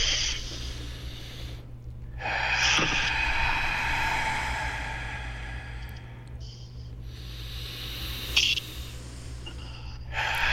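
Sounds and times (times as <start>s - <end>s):
deep breathing in through the nose and exhaling during guided relaxation: 0.0s - 10.5s.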